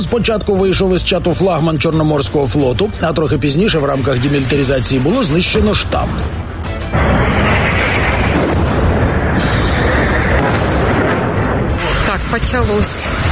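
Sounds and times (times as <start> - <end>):
speech: 0.0 - 6.7, 12.5 - 13.3
explosions from a missile strike on the Black Sea Fleet headquarters in Sevastopol: 3.8 - 13.3.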